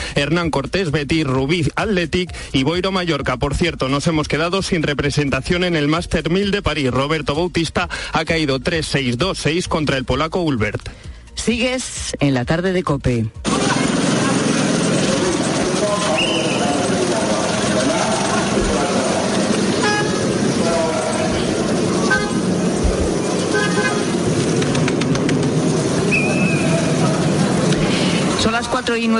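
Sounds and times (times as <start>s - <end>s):
speech: 0.2s - 14.2s, 28.9s - 29.1s
murmur of many voices: 13.4s - 29.1s
roar of engines in congested traffic at the Rafah crossing: 13.5s - 28.4s
car horns tooting at the Rafah crossing: 19.6s - 24.3s.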